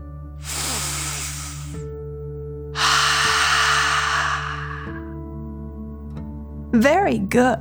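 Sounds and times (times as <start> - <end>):
slow deep breath in through the nose: 0.4 - 1.8, 2.8 - 5.2
speech: 6.8 - 7.5.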